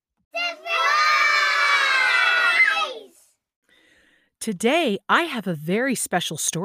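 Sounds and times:
group of children cheering and shouting: 0:00.4 - 0:03.2
speech: 0:04.4 - 0:06.6.

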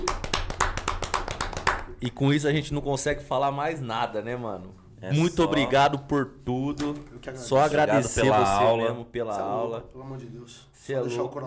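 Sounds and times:
hands clapping: 0:00.0 - 0:02.0
speech: 0:02.0 - 0:11.4.

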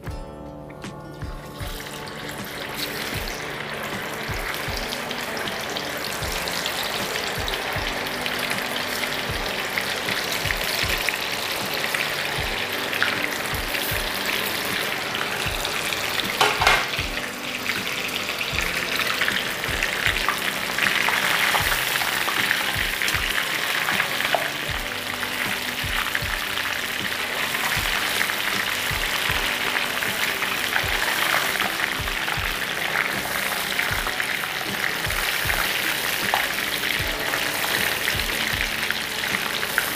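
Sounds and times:
cobbler catfish fillet frying in a hot pan: 0:01.5 - 0:39.9.

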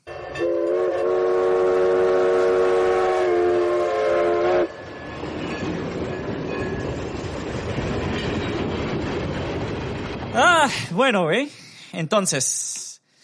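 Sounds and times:
rumble and clatter of a passing train: 0:00.0 - 0:11.6
train horn blast: 0:00.1 - 0:04.8
speech: 0:11.0 - 0:12.7.

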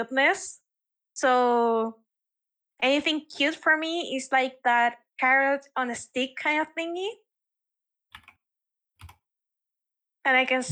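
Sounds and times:
speech: 0:00.0 - 0:00.6, 0:01.2 - 0:02.0, 0:02.8 - 0:07.2, 0:10.3 - 0:10.7
computer keyboard typing: 0:08.1 - 0:08.4.

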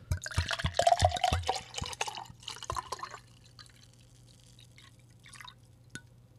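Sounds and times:
wine pouring from a bottle into a glass: 0:00.1 - 0:05.6.

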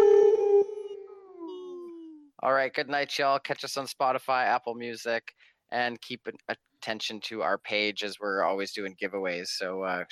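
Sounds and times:
person howling like a wolf: 0:00.0 - 0:02.1
speech: 0:02.4 - 0:10.1.

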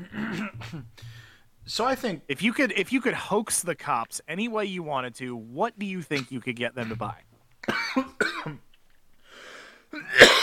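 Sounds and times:
person coughing after swallowing beer the wrong way: 0:00.0 - 0:01.3, 0:06.8 - 0:08.6, 0:10.0 - 0:10.4
raspy breath drawn in: 0:01.0 - 0:01.5, 0:09.2 - 0:09.9
speech: 0:01.7 - 0:07.3, 0:08.0 - 0:08.7.

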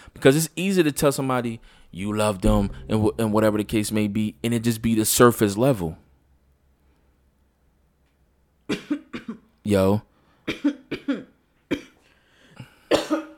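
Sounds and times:
speech: 0:00.2 - 0:06.0, 0:09.6 - 0:11.1
coughing into a microphone: 0:08.7 - 0:09.5, 0:10.5 - 0:12.0, 0:12.9 - 0:13.3.

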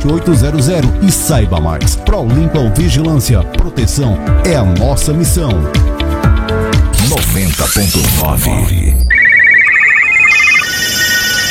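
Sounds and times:
speech: 0:00.0 - 0:06.1, 0:07.0 - 0:09.0
telephone ringing with a rapid bright electronic trill: 0:09.1 - 0:11.4.

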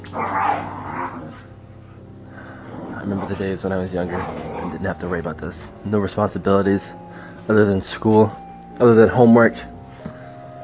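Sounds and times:
pet dog growling: 0:00.0 - 0:05.1
speech: 0:03.1 - 0:09.7.

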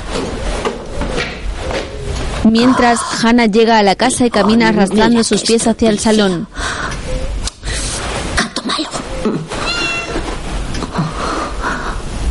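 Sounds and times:
dense noise: 0:00.0 - 0:12.2
speech: 0:02.4 - 0:06.8
cat meowing in a house: 0:09.6 - 0:10.3.

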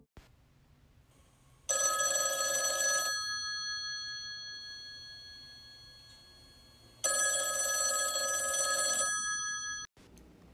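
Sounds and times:
telephone ringing with a bright electronic tone: 0:01.7 - 0:09.9.

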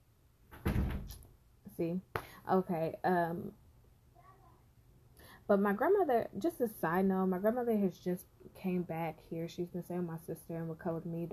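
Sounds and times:
door swinging shut with a thud and rattle: 0:00.5 - 0:01.2
speech: 0:01.8 - 0:03.6, 0:05.5 - 0:11.3.

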